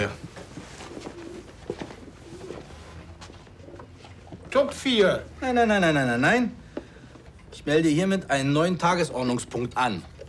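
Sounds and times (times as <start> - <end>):
speech: 0.0 - 0.2, 4.6 - 6.6, 7.6 - 10.1
pigeon cooing: 0.8 - 2.8.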